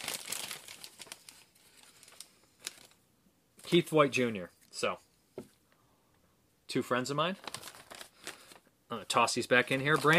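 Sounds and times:
paper slips crinkling as a name is drawn by hand: 0.0s - 3.0s, 7.4s - 10.1s
speech: 3.7s - 5.5s, 6.7s - 7.6s, 8.9s - 10.1s.

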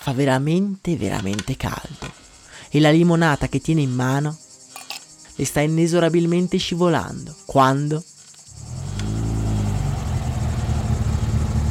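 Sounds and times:
speech: 0.1s - 4.4s, 5.4s - 8.1s
luxury car engine roaring: 8.6s - 11.6s.

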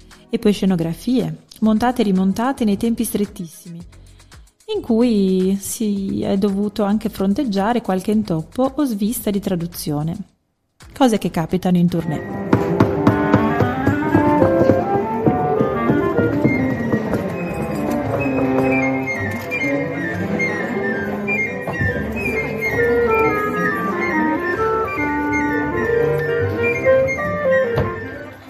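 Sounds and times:
speech: 0.3s - 4.0s, 4.7s - 10.3s, 10.9s - 12.5s
orchestral instruments warming up in a theatre orchestra pit: 12.1s - 28.4s.

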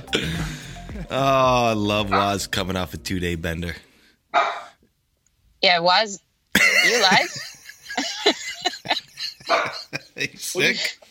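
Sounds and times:
speech: 0.1s - 4.7s, 5.6s - 7.5s, 9.5s - 11.0s
laughter: 6.6s - 10.7s
dogs barking in short sharp yaps: 9.4s - 10.0s.

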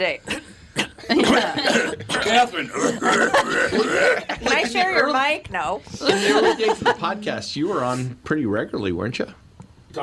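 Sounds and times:
speech: 0.0s - 0.3s, 1.1s - 10.0s
man coughing: 0.3s - 4.5s
laughter: 6.0s - 7.2s.

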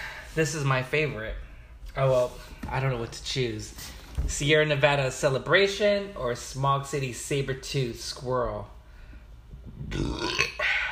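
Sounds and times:
speech: 0.4s - 8.8s, 9.8s - 10.5s
person burping loudly: 9.8s - 10.9s.

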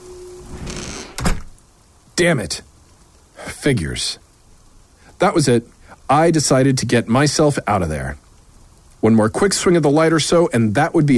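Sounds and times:
door slamming shut in the wind: 0.5s - 1.6s
speech: 2.2s - 2.7s, 3.6s - 4.2s, 5.2s - 8.2s, 9.0s - 11.1s.

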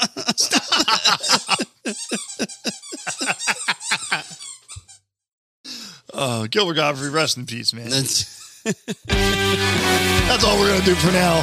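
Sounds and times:
speech: 0.0s - 0.6s, 6.2s - 11.4s
laughter: 0.0s - 4.4s, 7.9s - 9.1s
dog making high-pitched squeaks: 1.4s - 5.0s.

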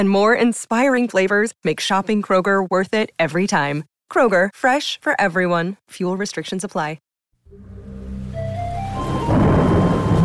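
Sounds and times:
speech: 0.0s - 7.7s
heavy rain in a full downpour: 8.9s - 10.2s
low rolling thunder: 9.0s - 10.2s.

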